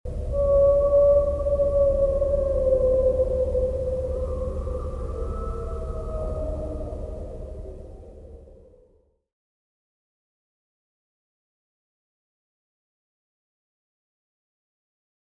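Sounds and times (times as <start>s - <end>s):
whales: 0.1s - 9.0s.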